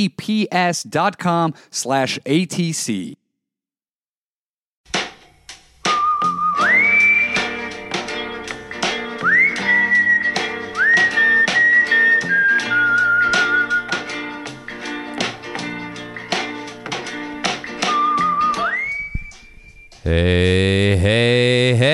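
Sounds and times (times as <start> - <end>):
speech: 0.0 - 3.2, 20.1 - 21.9
layered backing music: 4.9 - 21.9
person whistling a sliding sustained melody: 5.9 - 8.0, 9.2 - 14.1, 17.8 - 20.1.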